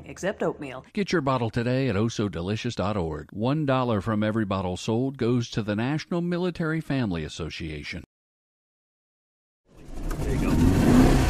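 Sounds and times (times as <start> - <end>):
speech: 0.1 - 8.1
1963 356B car engine revving: 9.7 - 11.2.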